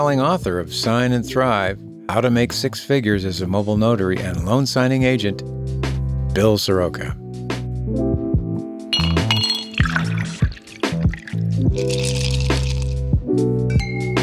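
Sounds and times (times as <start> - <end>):
speech: 0.0 - 5.8, 6.4 - 7.4
steady musical bed: 0.0 - 14.2
glass clinking: 9.0 - 12.8
beverage poured into a glass: 9.0 - 13.0.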